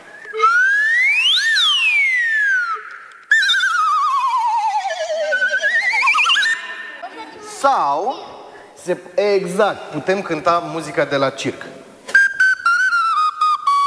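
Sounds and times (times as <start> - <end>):
slide whistle glissando: 0.0 - 7.0, 12.1 - 13.8
speech: 7.6 - 11.8.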